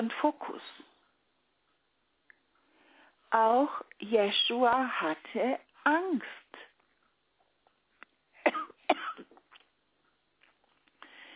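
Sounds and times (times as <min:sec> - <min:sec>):
speech: 0:00.0 - 0:00.8, 0:03.3 - 0:06.6
person coughing loudly: 0:08.5 - 0:09.4.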